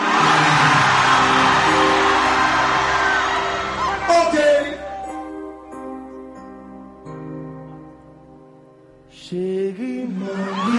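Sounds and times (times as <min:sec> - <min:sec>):
large concert crowd cheering and shouting: 0:00.0 - 0:05.8, 0:10.1 - 0:10.7.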